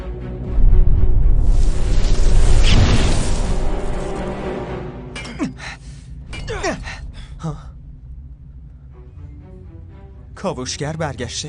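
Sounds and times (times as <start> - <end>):
loud explosion with rumbling decay: 0.5 - 4.5
speech: 10.4 - 11.4.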